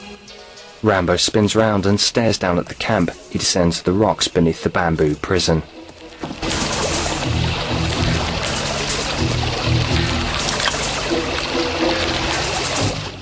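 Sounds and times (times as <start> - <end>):
speech: 0.8 - 6.7
rushing water as a man wades across a river: 4.7 - 13.2.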